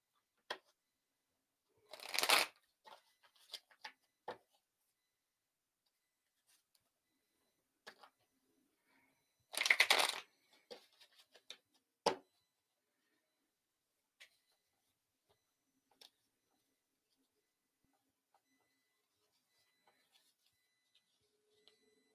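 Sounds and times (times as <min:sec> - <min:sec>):
deck of tarot cards shuffled for a reading: 0:01.9 - 0:02.5, 0:09.6 - 0:10.2.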